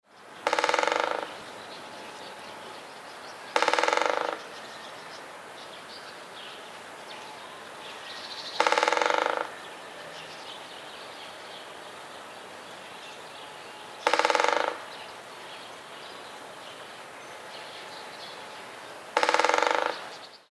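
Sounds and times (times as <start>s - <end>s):
great spotted woodpecker drumming: 0.4s - 1.4s, 3.5s - 4.6s, 8.5s - 9.6s, 14.0s - 14.9s, 19.1s - 20.2s.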